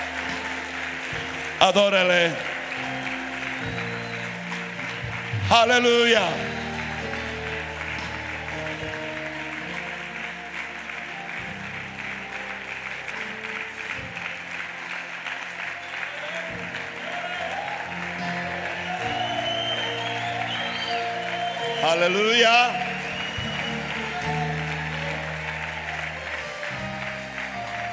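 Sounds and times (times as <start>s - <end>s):
audience applauding at a worship service: 0.0s - 27.9s
speech: 1.2s - 3.0s, 5.5s - 6.5s, 21.9s - 22.8s.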